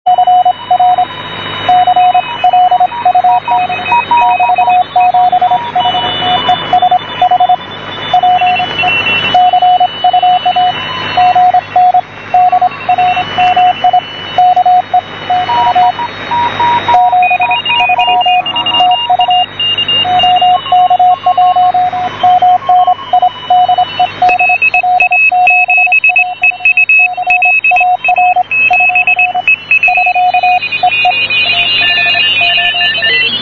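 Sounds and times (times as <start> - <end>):
CW morse code tones on a direct conversion receiver: 0.1 - 33.4.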